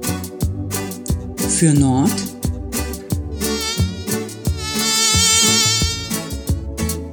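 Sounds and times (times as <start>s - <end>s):
rhythmic music track with steady drum hits: 0.0s - 7.1s
speech: 1.6s - 2.3s
mosquito buzzing: 3.4s - 6.3s.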